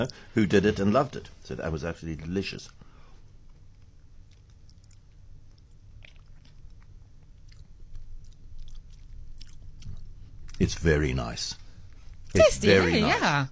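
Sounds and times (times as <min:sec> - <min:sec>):
speech: 0:00.0 - 0:02.8, 0:10.6 - 0:11.6, 0:12.3 - 0:13.5
low steady hum: 0:00.0 - 0:13.5
crunching bites and chewing of biscuits in a studio: 0:02.6 - 0:10.9.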